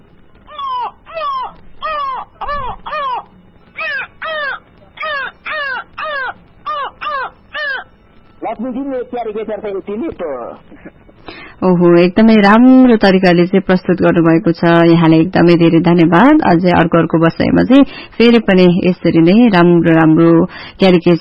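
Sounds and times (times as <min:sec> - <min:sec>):
human voice imitating a crow cawing: 0:00.5 - 0:07.9
speech: 0:08.6 - 0:10.9, 0:11.6 - 0:21.1.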